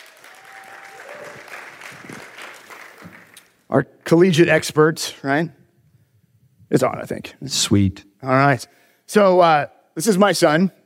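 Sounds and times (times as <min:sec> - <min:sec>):
audience applause welcoming a guest: 0:00.0 - 0:03.6
speech: 0:03.7 - 0:05.6, 0:06.7 - 0:10.8.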